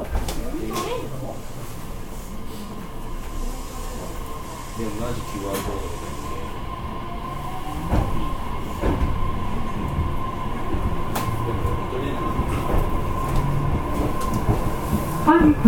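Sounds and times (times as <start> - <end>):
JR BEC819 series battery electric train rumble on the move: 0.0 - 15.6
speech: 4.8 - 6.1
wheels clacking over rail joints: 7.5 - 15.6.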